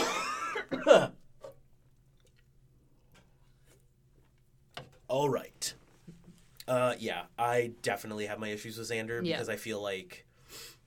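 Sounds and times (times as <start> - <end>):
person coughing: 0.0 - 1.2
speech: 0.7 - 1.2, 5.1 - 5.8, 6.7 - 10.7.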